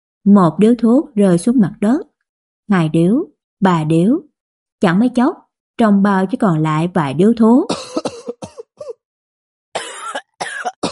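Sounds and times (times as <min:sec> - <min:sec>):
speech: 0:00.2 - 0:02.1, 0:02.7 - 0:07.8
man coughing dryly from smoking too much: 0:07.7 - 0:09.0, 0:09.8 - 0:10.9.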